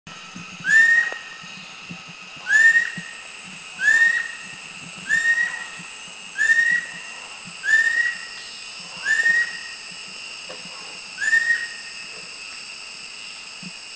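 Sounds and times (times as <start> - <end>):
Banded Kingfisher calling: 3.8 - 9.8, 11.2 - 12.1.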